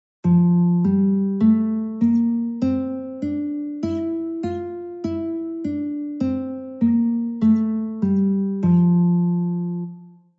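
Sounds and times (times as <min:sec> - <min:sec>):
guitar playing an F scale: 0:00.2 - 0:10.3.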